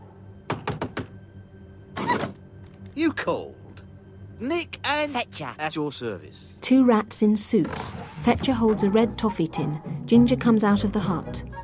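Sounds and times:
knocking on a door: 0.4 - 1.2
speech: 3.0 - 3.6, 4.4 - 11.6.

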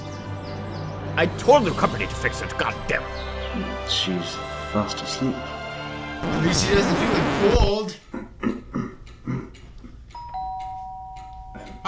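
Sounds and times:
speech: 1.2 - 5.6, 6.2 - 8.0
two-tone electronic doorbell chime inside a house: 10.2 - 11.8.

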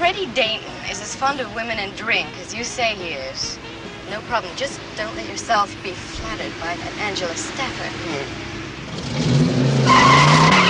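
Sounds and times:
car engine: 0.0 - 10.6
speech: 0.1 - 8.5
car tires squealing as a car pulls away: 4.9 - 10.6.

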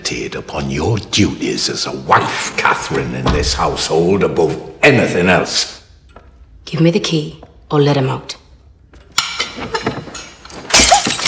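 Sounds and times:
speech: 0.1 - 5.8, 6.7 - 8.4
glass clinking: 9.2 - 11.2
glass thrown and shattering against a door: 10.5 - 11.2.

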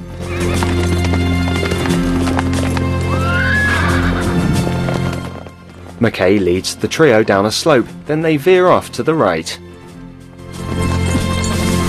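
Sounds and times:
horses' hooves clip-clopping over rocky dusty terrain: 0.1 - 9.2, 9.8 - 11.8
horse whinnying: 0.2 - 5.6
speech: 6.0 - 9.6.

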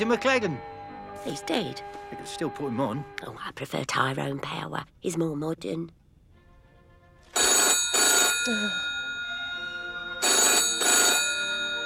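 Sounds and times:
speech: 0.0 - 6.0, 8.4 - 8.9
telephone bell ringing: 7.3 - 11.8.

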